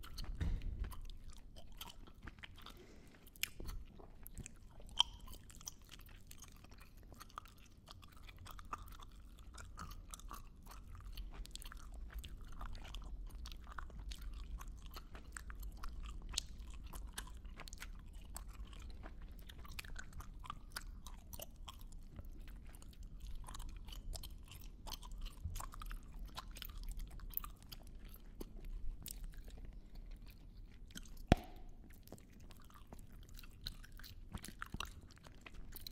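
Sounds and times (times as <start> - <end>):
gum chewing with wet clicks and squelches: 0.0 - 35.9.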